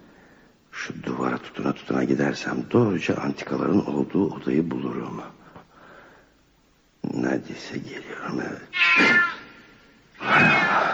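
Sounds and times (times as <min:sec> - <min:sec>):
speech: 0:01.4 - 0:05.4, 0:07.2 - 0:09.4
cat yowling after being stepped on: 0:08.7 - 0:10.9.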